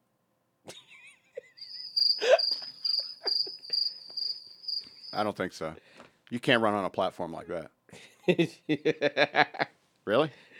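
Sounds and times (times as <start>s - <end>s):
cricket chirping: 1.4s - 5.4s
speech: 5.2s - 10.5s.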